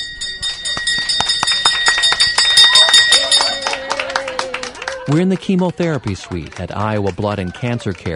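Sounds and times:
bright metal hand bell clanging to celebrate chemo end: 0.0s - 3.9s
speech: 5.1s - 8.1s.

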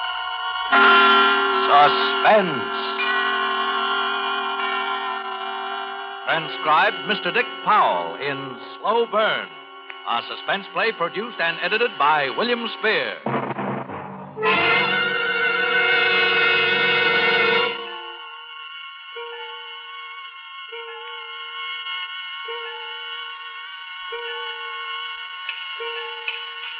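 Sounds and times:
sustained held tone: 0.0s - 13.2s, 14.0s - 26.7s
loud orchestral chord: 0.7s - 18.3s
speech: 1.8s - 2.8s, 6.3s - 13.4s, 14.4s - 14.9s.

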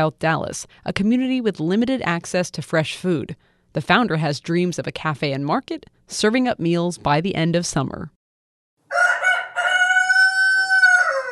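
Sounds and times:
speech: 0.0s - 8.2s
rooster crowing: 8.9s - 11.3s.

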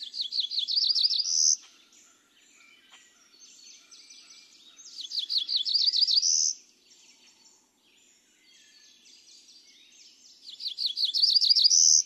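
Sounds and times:
Cerulean Warbler buzzy high come hither song in a regional dialect: 0.0s - 1.7s, 4.5s - 7.0s, 8.7s - 12.0s.

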